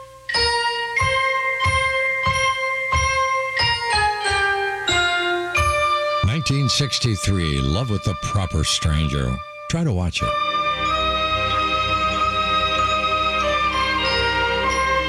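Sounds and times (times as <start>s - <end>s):
bright bell-like chimes in an upbeat love-song melody: 0.3s - 6.3s, 10.5s - 15.0s
speech: 6.5s - 10.6s.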